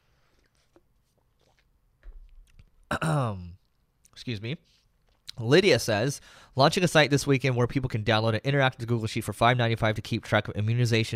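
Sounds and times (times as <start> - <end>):
person sipping tea with wet slurps: 0.2 - 1.7
speech: 2.9 - 3.5, 4.2 - 4.8, 5.4 - 11.1.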